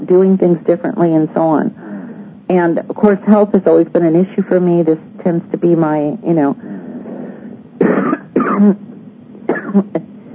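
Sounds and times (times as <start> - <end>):
speech: 0.1 - 1.8, 2.5 - 6.7, 8.6 - 8.9, 9.7 - 10.1
person clearing throat: 7.8 - 8.8, 9.5 - 10.1
person coughing: 7.8 - 8.8, 9.5 - 10.0.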